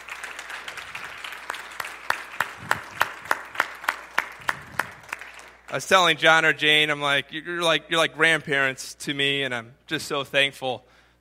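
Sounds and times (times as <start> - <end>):
audience clapping in thanks: 0.0 - 6.5
speech: 5.7 - 10.9.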